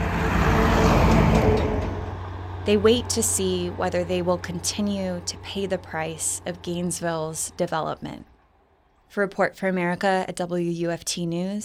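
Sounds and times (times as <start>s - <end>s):
heavy truck rumbling past on a residential street: 0.0s - 9.0s
speech: 2.6s - 8.3s, 9.1s - 11.6s.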